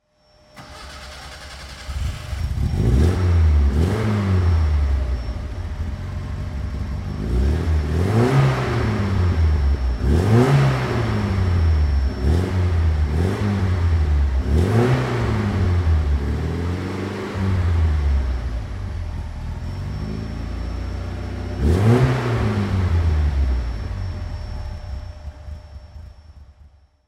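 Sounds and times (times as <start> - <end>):
Alfa Romeo Giulia 1300 ti car engine: 0.6 - 26.9.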